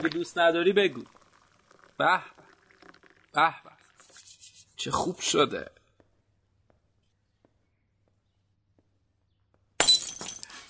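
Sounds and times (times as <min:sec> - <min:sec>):
speech: 0:00.0 - 0:01.2, 0:02.0 - 0:02.4, 0:03.4 - 0:03.7, 0:04.8 - 0:05.8
glass cup fragments tinkling: 0:09.8 - 0:10.6
glass cup shattering by accident: 0:09.8 - 0:10.6.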